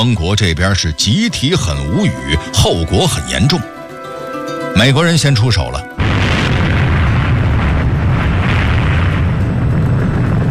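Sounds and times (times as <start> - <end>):
speech: 0.0 - 3.8, 4.8 - 6.2
atomic bomb explosion sound effect, deep roaring rumble: 6.0 - 10.4.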